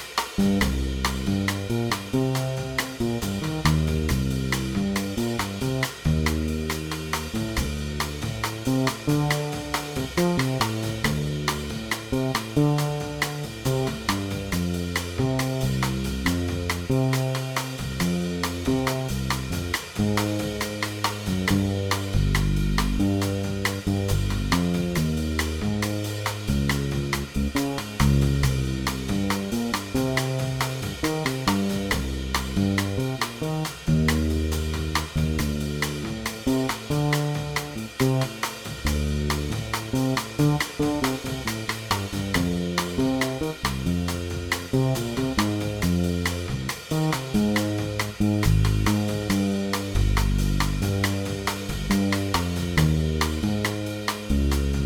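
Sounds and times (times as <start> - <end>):
minor modal backing track without comping: 0.4 - 54.8.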